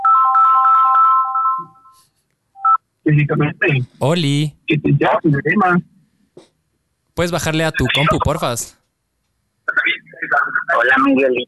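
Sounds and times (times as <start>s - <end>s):
phone ringtone of quick pulsing electronic notes: 0.0s - 2.0s
speech: 3.1s - 6.5s, 7.2s - 8.8s, 10.3s - 11.4s.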